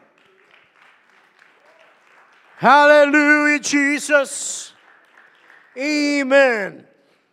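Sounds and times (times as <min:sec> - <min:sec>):
congregation clapping in applause: 0:00.0 - 0:07.3
speech: 0:02.6 - 0:04.7, 0:05.8 - 0:06.9.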